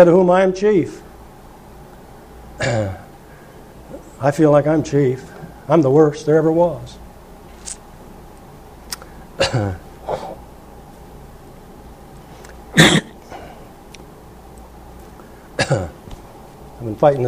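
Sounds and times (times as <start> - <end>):
speech: 0.0 - 1.1, 2.6 - 3.0, 4.2 - 7.0, 9.4 - 10.2, 15.7 - 16.0, 16.8 - 17.2
quiet hissy background: 0.0 - 17.2
person coughing: 2.6 - 3.1, 9.4 - 10.4, 12.8 - 13.6, 15.6 - 16.0
throat clearing: 2.6 - 3.1, 9.4 - 10.4, 12.8 - 13.6, 15.6 - 16.0.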